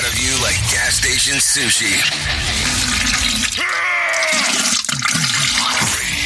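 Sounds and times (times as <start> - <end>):
whistling tones from refilling toilet pipes: 0.1 - 6.1
speech: 1.0 - 4.5
toilet flushing: 1.2 - 6.2.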